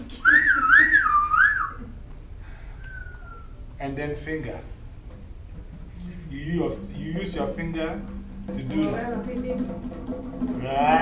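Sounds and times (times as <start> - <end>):
person whistling one sustained warbling note: 0.1 - 1.9, 2.8 - 3.6
speech: 3.9 - 4.8, 6.3 - 11.0.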